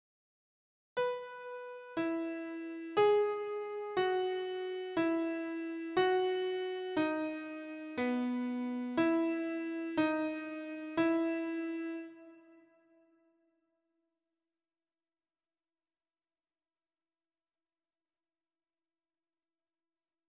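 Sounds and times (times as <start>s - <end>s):
piano notes in E major for sound dictation: 1.0s - 12.3s.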